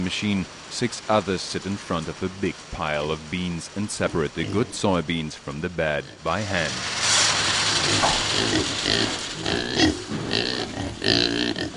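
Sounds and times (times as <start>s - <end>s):
speech: 0.1s - 7.0s, 7.9s - 10.1s, 11.0s - 11.7s
crowd of pigs grunting and oinking: 4.1s - 4.8s, 7.7s - 11.7s
pigs squealing and snorting: 6.7s - 11.7s.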